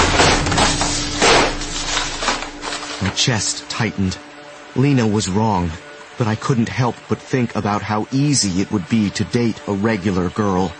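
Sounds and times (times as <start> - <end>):
drywall cracking and crashing to the floor: 0.0 - 3.2
heavy impacts of drywall slamming to the floor: 0.0 - 3.3
speech: 3.2 - 10.7.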